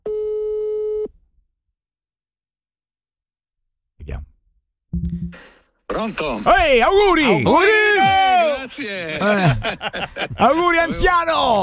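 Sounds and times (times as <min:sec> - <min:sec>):
telephone call tone while waiting for an answer: 0:00.1 - 0:01.1
speech: 0:05.0 - 0:07.9, 0:08.7 - 0:11.6
laughter: 0:06.0 - 0:11.6.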